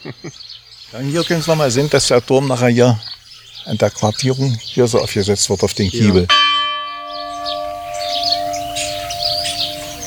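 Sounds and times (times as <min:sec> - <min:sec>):
speech: 0:00.0 - 0:06.6
birds chirping and twittering among tall trees: 0:00.0 - 0:10.0
church bell striking the half hour: 0:06.3 - 0:10.0.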